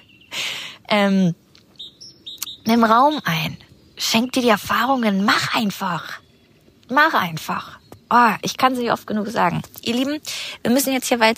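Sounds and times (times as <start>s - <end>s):
faint high chirps: 0.0s - 8.6s
speech: 0.9s - 1.4s, 2.7s - 6.2s, 6.9s - 11.3s
bird calling loudly: 1.6s - 8.5s.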